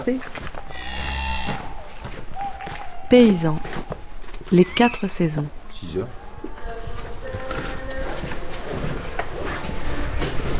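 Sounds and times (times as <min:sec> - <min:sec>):
speech: 0:00.0 - 0:00.5, 0:03.1 - 0:03.9, 0:04.5 - 0:06.2
barnyard rustling and shuffling movement: 0:00.0 - 0:10.5
cow mooing: 0:00.6 - 0:02.0.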